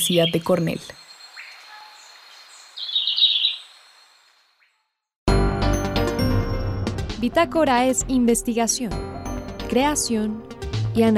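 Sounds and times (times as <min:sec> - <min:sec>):
speech: 0:00.0 - 0:01.0, 0:07.2 - 0:09.1, 0:09.7 - 0:11.1
chestnut-backed greenlet singing a thin high trill: 0:00.0 - 0:04.8
music: 0:05.3 - 0:11.1.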